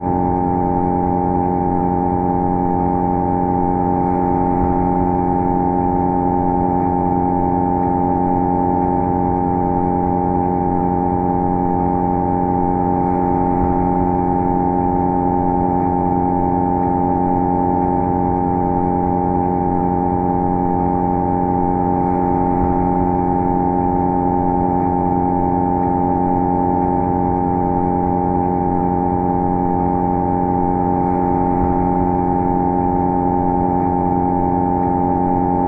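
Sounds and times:
dull industrial machine hum: 0.0 - 35.6.

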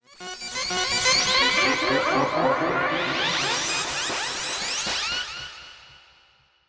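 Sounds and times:
organ with pitch modulation and delay: 1.1 - 4.5.

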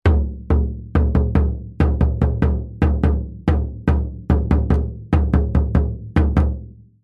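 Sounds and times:
tom drum hits in a short rhythmic pattern: 0.0 - 6.6.

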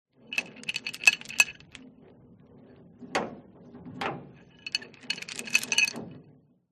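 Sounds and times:
industrial chain shaking and rattling against hollow metal: 0.3 - 1.8, 4.4 - 6.0.

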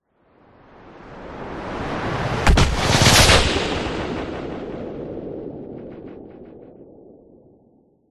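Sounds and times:
slow sound design whoosh: 1.2 - 6.6
explosion: 2.3 - 7.2.

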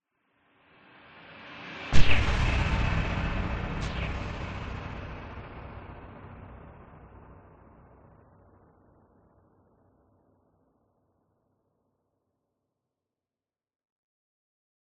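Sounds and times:
cinematic reversed build into sharp powerful hit with long tail: 1.9 - 8.2.

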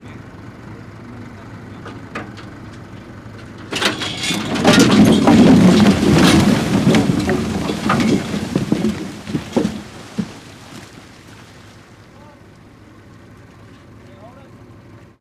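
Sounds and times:
industrial logging truck idling: 0.0 - 15.1
logs dumped into river by logging truck: 3.7 - 12.1.

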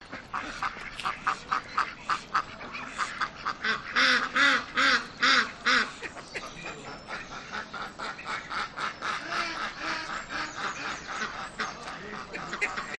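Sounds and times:
ducks calling on an urban farm: 0.0 - 12.9
laughter: 5.9 - 7.6, 9.2 - 12.9.

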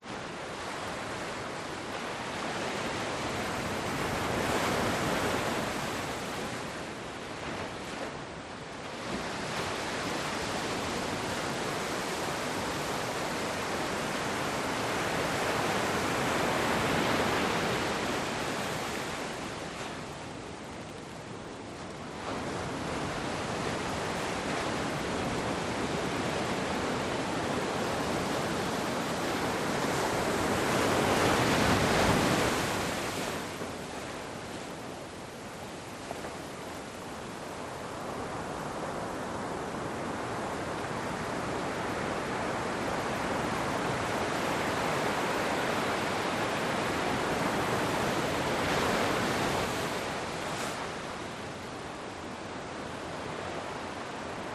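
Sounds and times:
wind on a beach: 0.0 - 54.5
waves breaking on a beach in a cove at night: 0.3 - 54.5.

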